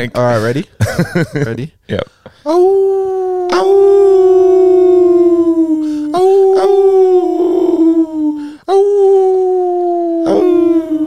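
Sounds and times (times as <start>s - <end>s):
speech: 0.0s - 3.8s
person howling like a dog: 2.5s - 11.0s.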